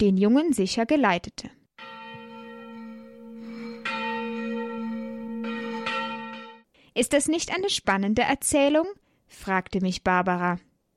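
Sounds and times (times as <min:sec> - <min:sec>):
speech: 0:00.0 - 0:01.6, 0:07.0 - 0:10.7
church tower bell ringing: 0:01.8 - 0:06.7.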